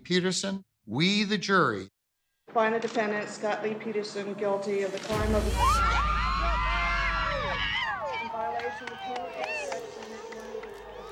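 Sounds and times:
speech: 0.1s - 5.9s, 8.7s - 9.8s
large crowd outside a California courthouse cheering and shouting at a guilty verdict: 5.1s - 11.0s.

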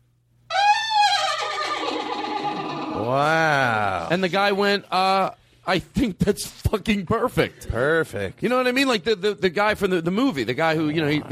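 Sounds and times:
horse neighing: 0.5s - 4.1s
speech: 3.0s - 11.3s.

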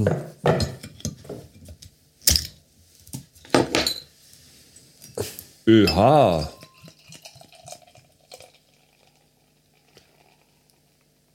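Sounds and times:
speech: 0.0s - 0.7s, 5.7s - 6.6s
glass clinking: 3.6s - 4.1s, 5.8s - 8.6s
beer fizzing: 5.9s - 11.3s.

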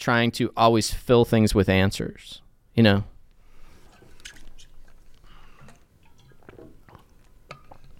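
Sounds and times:
speech: 0.0s - 3.1s
person sipping and swallowing water: 3.4s - 7.9s
small mouth clicks: 3.9s - 7.9s.

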